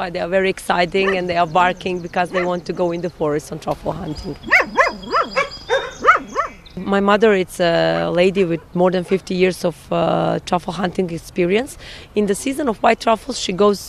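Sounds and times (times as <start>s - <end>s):
speech: 0.0s - 5.0s, 6.8s - 13.8s
truffle-hunting dogs on a farm barking and yelping at visitors: 1.0s - 2.8s, 4.4s - 6.7s, 7.9s - 9.3s.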